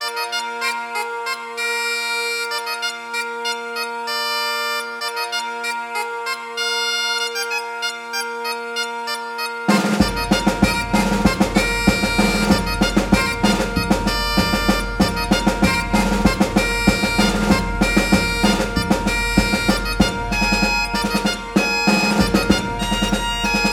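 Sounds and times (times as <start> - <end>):
bagpipes playing: 0.0 - 23.7.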